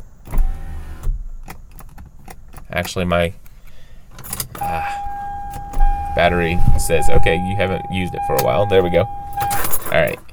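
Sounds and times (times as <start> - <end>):
electric car power window motor whirring as the glass rolls up: 0.0 - 1.9, 4.3 - 9.8
speech: 2.7 - 3.4, 6.2 - 9.2, 9.9 - 10.2.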